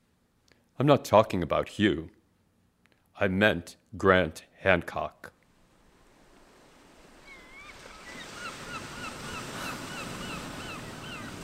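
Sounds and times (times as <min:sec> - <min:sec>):
speech: 0:00.8 - 0:02.2, 0:03.2 - 0:05.4
ocean surf at a beach: 0:05.6 - 0:11.4
high wavering bird calls: 0:07.2 - 0:11.4.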